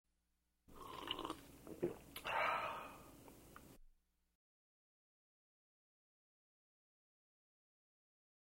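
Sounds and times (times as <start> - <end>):
person sipping coffee: 0.7 - 2.4.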